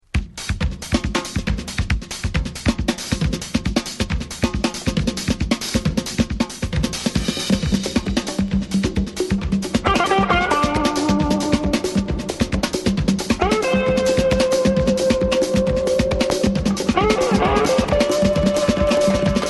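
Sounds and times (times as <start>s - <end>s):
samba music: 0.1s - 19.4s.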